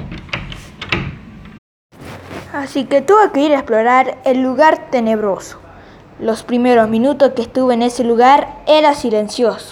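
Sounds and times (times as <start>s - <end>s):
locked door of an abandoned castle rattling: 0.0s - 1.6s
speech: 2.5s - 5.6s, 6.2s - 9.7s.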